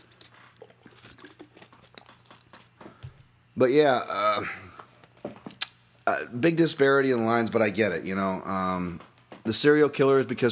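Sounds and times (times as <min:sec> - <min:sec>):
person sipping water: 0:00.0 - 0:03.3
soft wet gulps: 0:00.0 - 0:03.3
speech: 0:03.6 - 0:04.7, 0:06.1 - 0:10.4.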